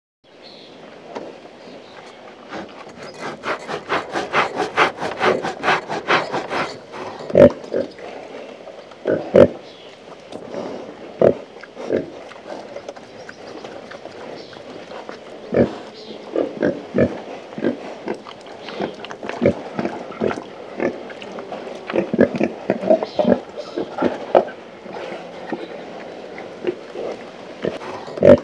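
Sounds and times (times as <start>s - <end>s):
pig: 2.0s - 28.4s.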